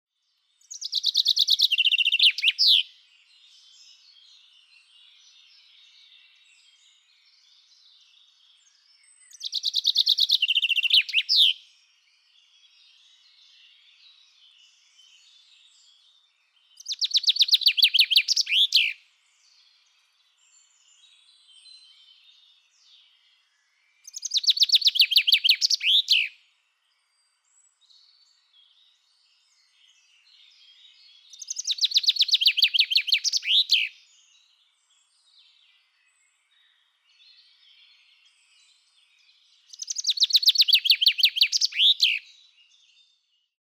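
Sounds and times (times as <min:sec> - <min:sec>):
common chaffinch singing: 0:00.6 - 0:02.9, 0:09.3 - 0:11.6, 0:16.8 - 0:19.0, 0:24.0 - 0:26.3, 0:30.4 - 0:34.0, 0:39.6 - 0:42.8.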